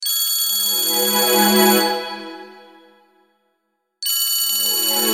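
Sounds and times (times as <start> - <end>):
alarm clock ringing: 0.0 - 0.9, 4.0 - 5.0.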